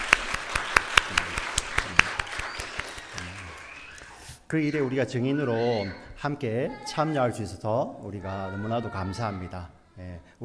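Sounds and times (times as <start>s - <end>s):
church audience clapping at a baptism service: 0.0s - 4.2s
speech: 4.5s - 10.4s.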